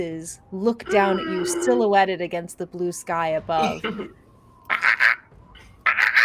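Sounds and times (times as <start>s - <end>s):
speech: 0.0s - 4.2s
baby bird squawking: 4.7s - 5.2s, 5.9s - 6.2s.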